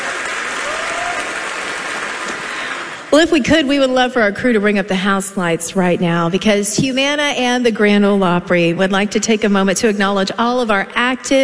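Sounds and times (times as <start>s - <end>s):
audience applause at a live country music show: 0.0s - 3.1s
speech: 3.1s - 11.4s.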